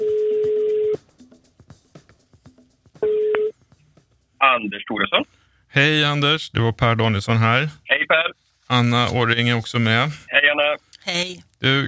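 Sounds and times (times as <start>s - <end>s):
outgoing telephone call ringing tone: 0.0s - 1.0s, 3.0s - 3.5s
speech: 4.6s - 10.3s, 11.1s - 11.8s.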